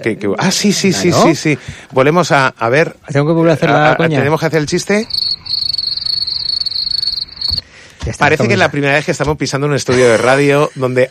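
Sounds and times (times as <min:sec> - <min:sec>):
speech: 0:00.0 - 0:05.4, 0:08.2 - 0:11.0
crickets chirping: 0:04.6 - 0:07.6.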